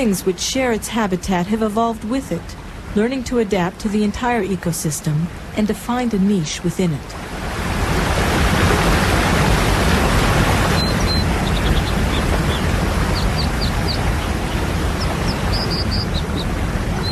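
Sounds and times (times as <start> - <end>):
speech: 0.0 - 7.4
waterfall roaring: 0.0 - 17.1
American dipper chirping: 10.0 - 17.1.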